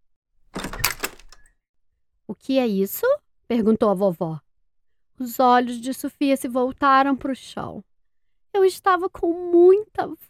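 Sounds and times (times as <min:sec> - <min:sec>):
pantry door creaking as it swings: 0:00.4 - 0:01.5
pantry door latch and handle rattling: 0:00.5 - 0:01.5
speech: 0:02.3 - 0:04.4, 0:05.2 - 0:07.9, 0:08.5 - 0:10.2.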